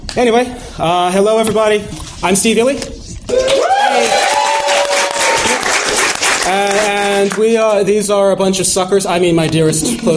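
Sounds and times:
speech: 0.2 - 4.2, 6.5 - 10.1
whoops and cheering voices: 3.3 - 5.8
room full of people clapping: 3.4 - 7.9.

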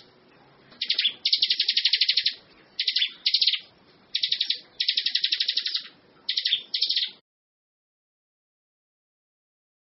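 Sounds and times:
bar-winged prinia buzzy chipping: 0.0 - 7.2.

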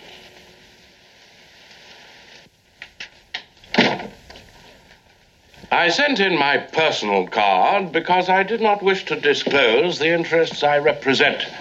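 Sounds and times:
faint steady hiss: 0.0 - 11.5
door shutting thump: 3.7 - 4.2
speech: 5.7 - 11.5.

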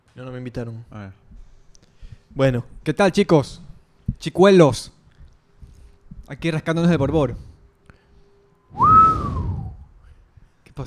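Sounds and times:
speech: 0.2 - 1.3, 2.3 - 5.0, 6.3 - 7.5
person whistling a single clear gliding note: 8.7 - 9.9
low rumbling noise: 8.7 - 10.1.

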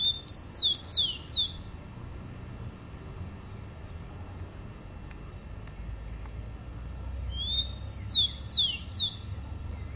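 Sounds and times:
Rufous-collared sparrow song: 0.0 - 1.7, 7.3 - 9.9
soft low hum: 0.0 - 9.9.

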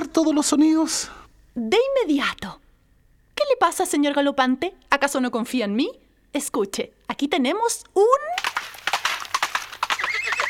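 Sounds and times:
speech: 0.2 - 2.6, 3.5 - 8.8
horse hooves clopping: 8.3 - 10.4
horse neighing: 9.2 - 10.4.

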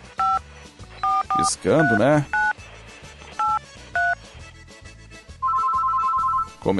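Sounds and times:
telephone keypad touch-tone beeps dialing a number: 0.2 - 0.4, 1.0 - 2.6, 3.4 - 4.2, 5.4 - 6.5
speech: 1.4 - 2.4.

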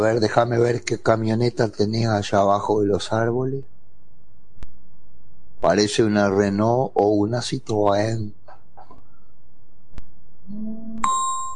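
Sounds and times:
speech: 0.0 - 3.7, 5.6 - 8.4
doorbell two-note chime at a country house: 10.7 - 11.5.

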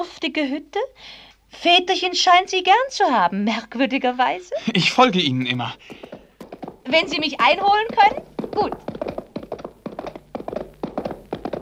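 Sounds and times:
speech: 0.2 - 6.0, 6.9 - 9.0
galloping horse hooves on a horseback ride home: 4.6 - 11.6.

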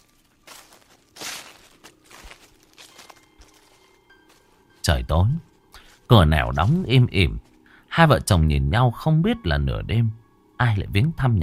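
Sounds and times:
footsteps rustling on dry leaves behind a house: 0.0 - 7.6
speech: 4.8 - 5.5, 6.1 - 11.4.

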